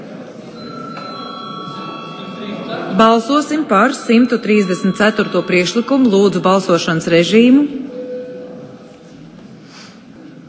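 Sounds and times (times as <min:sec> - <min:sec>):
murmur: 0:00.0 - 0:10.4
electric bell ringing to call a parliamentary vote: 0:00.6 - 0:08.7
speech: 0:02.9 - 0:07.9.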